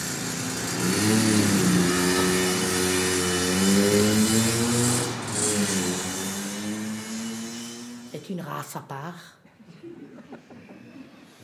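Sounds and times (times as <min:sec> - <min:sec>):
older motorcycle engine revving in Alsace: 0:00.0 - 0:08.1
speech: 0:08.4 - 0:09.4
laughter: 0:09.6 - 0:11.4.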